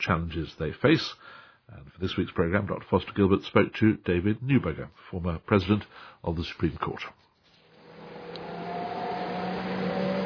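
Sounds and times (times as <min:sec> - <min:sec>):
speech: 0:00.0 - 0:07.2
rush hour city traffic of cars and buses: 0:07.8 - 0:10.2.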